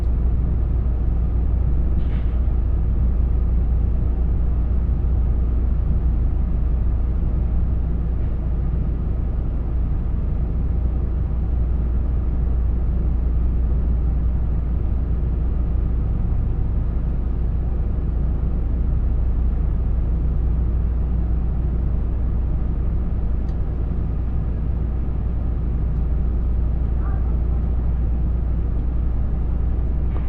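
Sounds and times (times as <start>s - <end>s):
Limited Express train interior rumble approaching a station: 0.0s - 30.2s
faint clank inside a train: 2.0s - 2.5s, 30.1s - 30.2s.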